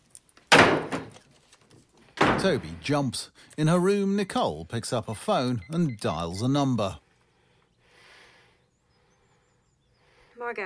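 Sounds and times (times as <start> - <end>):
fist punching a cupboard: 0.5 - 1.1
speech: 2.4 - 7.0.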